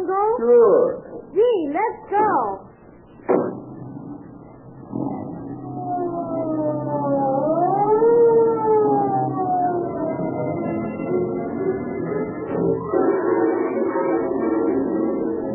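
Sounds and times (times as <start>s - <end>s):
speech: 0.4s - 2.6s
sharp thump: 3.2s - 4.1s
police car siren wailing: 4.6s - 15.5s.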